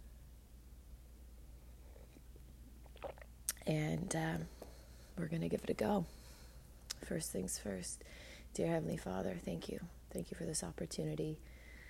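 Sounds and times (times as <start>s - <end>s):
low steady hum: 0.0s - 11.8s
faint wet mouth sounds: 2.8s - 3.6s
person sipping coffee: 2.8s - 3.6s
short slurp of coffee: 2.8s - 3.6s
speech: 3.7s - 4.6s, 5.2s - 6.2s, 7.0s - 11.6s.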